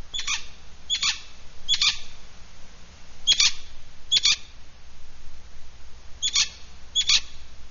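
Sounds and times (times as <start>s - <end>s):
Hispaniolan parrot Amazona ventralis giving rough grating squawks: 0.1s - 2.0s, 3.3s - 4.4s, 6.2s - 7.3s.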